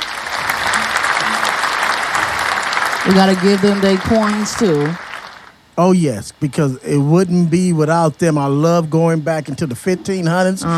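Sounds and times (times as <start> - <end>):
crowd applause: 0.0 - 5.5
speech: 3.0 - 5.0, 5.8 - 10.7.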